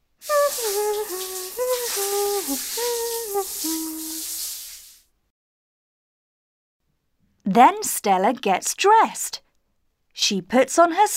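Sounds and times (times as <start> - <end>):
shower spray running as someone has a shower: 0.2 - 5.1
person humming or singing a short stepping melody: 0.3 - 4.3
speech: 2.5 - 4.0, 7.5 - 9.4, 10.2 - 11.1.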